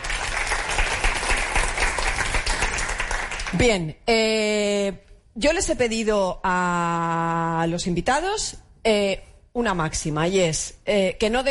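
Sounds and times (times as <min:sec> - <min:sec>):
audience applause: 0:00.0 - 0:03.5
speech: 0:03.5 - 0:11.4.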